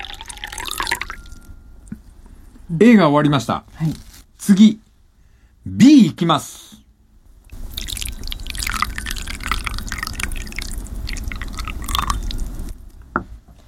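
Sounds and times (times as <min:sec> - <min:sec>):
hot water poured from one tea bowl into another: 0:00.0 - 0:01.5, 0:07.5 - 0:12.8
speech: 0:02.7 - 0:04.8, 0:05.6 - 0:06.7.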